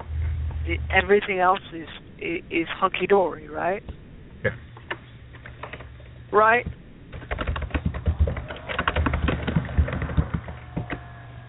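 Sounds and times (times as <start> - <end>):
speech: 0.7 - 4.7, 6.3 - 6.8
rapid typing on a computer keyboard: 7.1 - 11.1.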